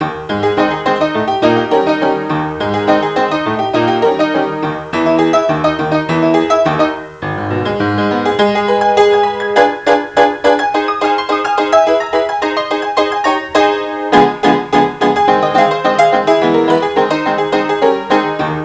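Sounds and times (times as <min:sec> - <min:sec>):
honky tonk music: 0:00.0 - 0:18.6.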